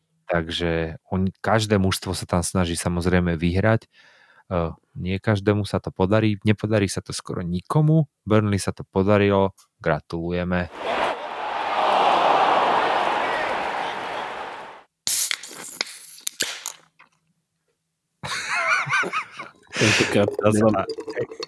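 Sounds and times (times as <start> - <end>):
speech: 0.3 - 11.2, 19.8 - 21.4
laughter: 10.7 - 14.8, 18.2 - 20.4
Guinness beer can fizzing after being opened: 18.6 - 21.4.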